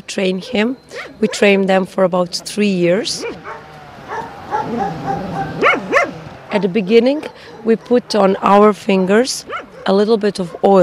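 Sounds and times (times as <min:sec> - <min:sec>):
speech: 0:00.1 - 0:03.6, 0:04.6 - 0:05.7, 0:06.5 - 0:10.8
truffle dog barking and yipping: 0:00.4 - 0:01.6, 0:02.4 - 0:08.0, 0:09.4 - 0:10.8.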